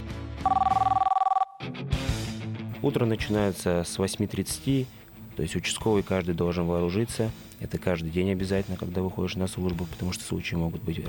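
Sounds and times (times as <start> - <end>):
telephone ringing with trilling two-tone pulses: 0.4 - 1.6
speech: 2.8 - 11.0.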